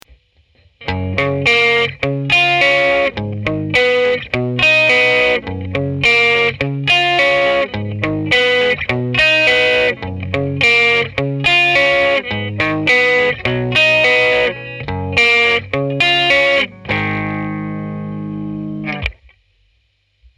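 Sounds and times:
electric guitar picking: 0.8s - 19.3s.

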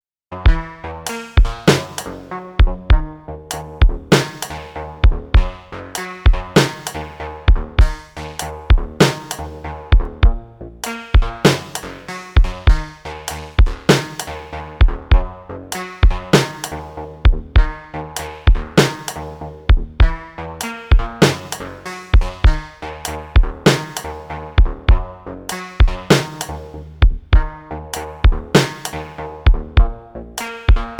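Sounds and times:
Minibrute synthesizer: 0.3s - 30.9s
Drumtraks drum machine beat: 0.5s - 20.2s, 20.9s - 22.7s, 23.4s - 25.1s, 25.8s - 30.9s.

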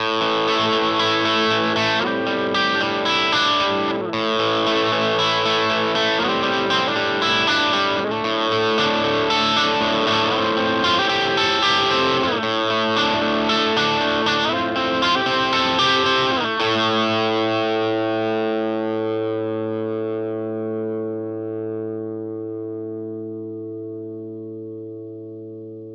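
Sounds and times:
Gibson Les Paul Studio electric guitar on bridge pickup: 0.0s - 25.9s.

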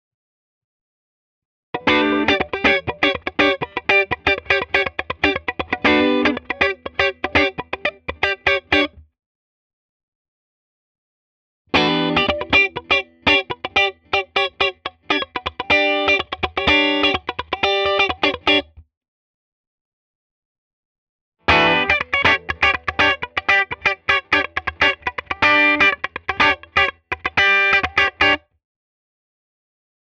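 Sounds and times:
clean funk music: 1.8s - 9.0s, 11.8s - 18.7s, 21.5s - 28.4s.

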